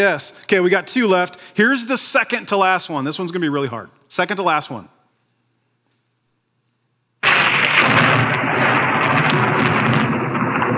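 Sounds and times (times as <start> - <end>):
speech: 0.0 - 5.0
thunder crack rolling into a sustained rumble: 7.2 - 10.7.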